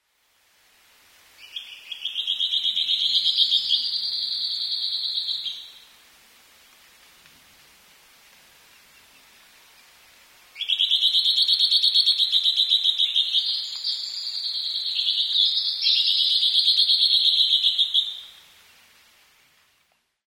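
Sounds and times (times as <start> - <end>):
juichi bird calling: 1.4 - 5.9, 10.6 - 18.4.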